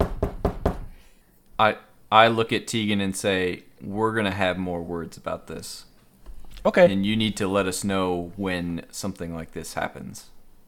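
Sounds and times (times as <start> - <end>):
knocking on a room door: 0.0 - 0.9
speech: 1.6 - 5.9, 6.6 - 10.3.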